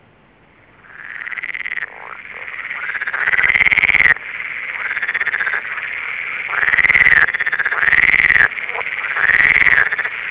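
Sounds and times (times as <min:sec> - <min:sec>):
edible frog Pelophylax esculentus calling: 0:00.8 - 0:10.2.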